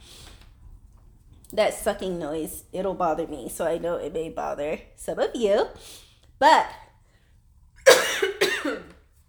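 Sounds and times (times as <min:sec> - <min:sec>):
speech: 0:01.5 - 0:06.8
person coughing harshly and chestily: 0:07.8 - 0:09.0.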